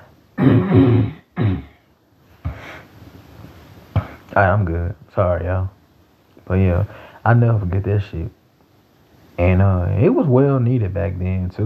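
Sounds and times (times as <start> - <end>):
man clearing throat: 0.4 - 1.8, 4.0 - 4.3
speech: 4.4 - 5.8, 6.5 - 8.4, 9.4 - 11.6.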